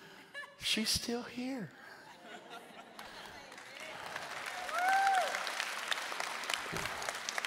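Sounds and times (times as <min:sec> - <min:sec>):
speech: 0:00.7 - 0:01.8
laughter: 0:01.8 - 0:03.5
audience clapping: 0:02.8 - 0:07.4
crowd whooping: 0:04.6 - 0:05.6.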